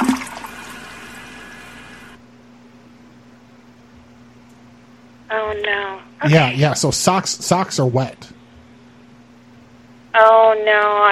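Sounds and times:
toilet flushing: 0:00.0 - 0:02.2
speech: 0:05.3 - 0:08.4, 0:10.6 - 0:11.0.

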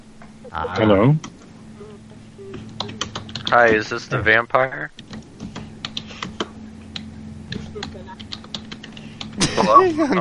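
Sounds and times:
steady low electrical hum: 0:00.0 - 0:10.1
speech: 0:00.5 - 0:01.3, 0:03.5 - 0:05.0, 0:09.6 - 0:10.1
quiet computer keyboard clicks: 0:02.6 - 0:03.6, 0:05.0 - 0:09.4.

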